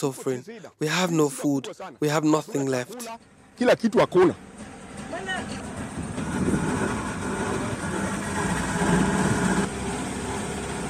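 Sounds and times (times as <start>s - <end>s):
speech: 0.0s - 5.7s
small boat engine droning on floodwater over submerged roads: 3.0s - 10.8s
floodwater noise: 4.1s - 10.8s.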